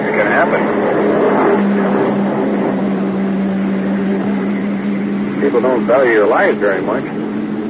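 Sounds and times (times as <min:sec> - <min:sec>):
police car engine rumbling as it pulls up: 0:00.0 - 0:07.6
speech: 0:05.5 - 0:07.2.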